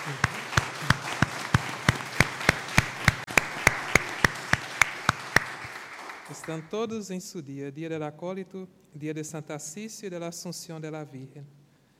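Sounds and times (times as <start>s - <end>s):
audience clapping in unison for altar servers on their feast day: 0.0s - 6.9s
speech: 0.1s - 0.3s, 6.4s - 11.6s.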